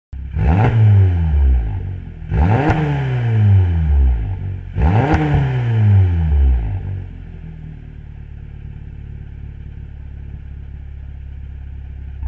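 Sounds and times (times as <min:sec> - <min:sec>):
TCR engine revving: 0:00.2 - 0:07.5.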